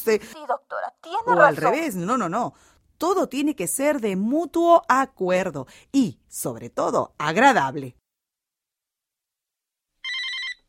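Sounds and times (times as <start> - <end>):
speech: 0.0 - 8.0
electronic telephone ringing with an incoming call: 10.0 - 10.6.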